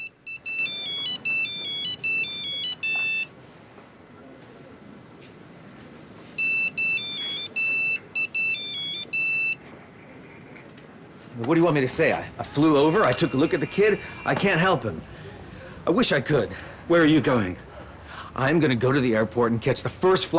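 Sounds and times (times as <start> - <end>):
mobile phone electronic ringtone ringing unanswered: 0.0 - 3.3, 6.4 - 9.7
speech: 11.4 - 15.2, 15.9 - 17.7, 18.4 - 20.3.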